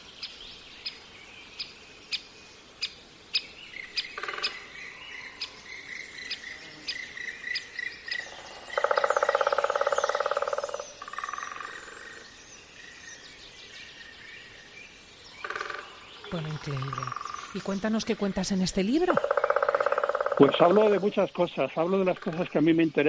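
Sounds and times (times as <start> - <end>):
woodpeckers knocking in a beech forest: 8.8 - 11.8, 15.4 - 22.7
speech: 16.4 - 19.3, 20.4 - 23.0.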